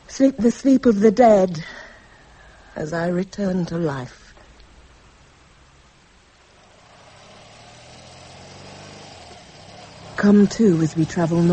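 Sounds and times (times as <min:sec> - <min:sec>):
speech: 0:00.2 - 0:01.8, 0:02.8 - 0:04.2, 0:10.2 - 0:11.5
motorbike with a sidecar engine droning through the Badlands: 0:06.4 - 0:11.5.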